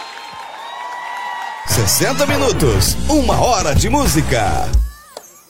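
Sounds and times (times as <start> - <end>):
crowd applauding: 0.0 - 2.6
crowd cheering: 0.0 - 3.4
speech: 1.7 - 4.9.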